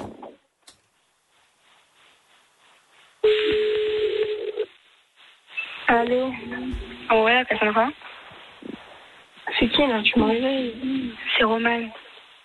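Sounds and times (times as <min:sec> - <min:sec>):
outgoing phone call ring tone after dialing: 0:03.3 - 0:04.7
speech: 0:06.1 - 0:08.0, 0:09.7 - 0:12.0.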